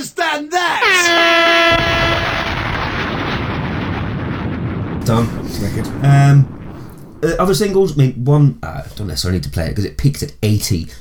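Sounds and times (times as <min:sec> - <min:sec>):
air horn blast: 0:00.8 - 0:02.7
sustained roaring rumble: 0:01.7 - 0:08.7
speech: 0:05.1 - 0:06.6, 0:07.2 - 0:10.9.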